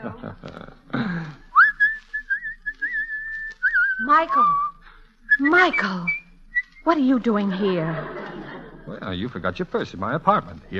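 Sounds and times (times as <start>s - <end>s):
speech: 0.0s - 0.7s, 4.1s - 4.7s, 5.4s - 6.2s, 6.8s - 8.2s, 9.1s - 10.7s
laughter: 0.0s - 1.7s, 7.3s - 10.7s
person whistling a short wavering tune: 1.5s - 6.9s.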